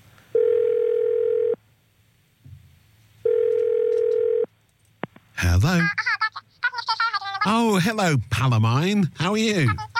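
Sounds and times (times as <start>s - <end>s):
telephone dial tone on a phone before a call connects: 0.4s - 1.6s, 3.3s - 4.5s
speech: 5.6s - 6.1s, 7.4s - 9.9s.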